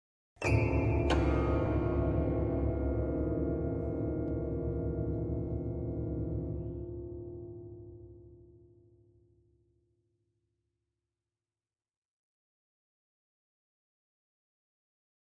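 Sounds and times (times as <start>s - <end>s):
grand piano strings: 0.4s - 8.4s.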